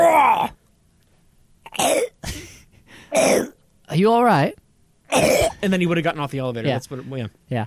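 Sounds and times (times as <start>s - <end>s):
person gasping through a sneeze build-up: 2.2s - 3.3s
speech: 4.0s - 7.6s.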